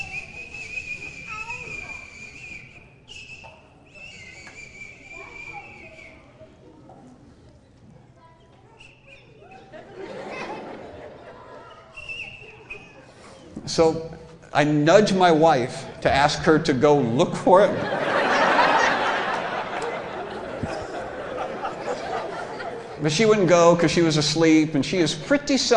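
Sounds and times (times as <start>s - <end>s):
person imitating a high-pitched whistling with their mouth: 0.0s - 6.2s, 11.9s - 13.5s
faint noise: 0.0s - 25.7s
laughter: 9.4s - 13.6s, 17.5s - 24.0s
speech: 13.7s - 17.9s, 23.0s - 25.7s.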